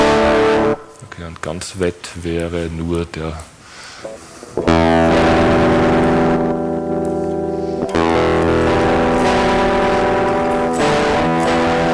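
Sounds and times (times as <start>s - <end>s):
electric guitar chords through a fully wet distortion plugin: 0.0s - 1.2s, 4.0s - 11.9s
speech: 1.2s - 5.7s.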